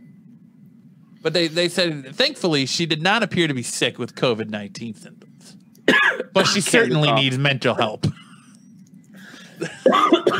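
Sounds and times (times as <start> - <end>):
speech: 1.2 - 5.6, 6.2 - 8.2, 9.6 - 10.3
harsh raspy coughing after smoking cannabis: 5.9 - 6.9, 9.5 - 10.3.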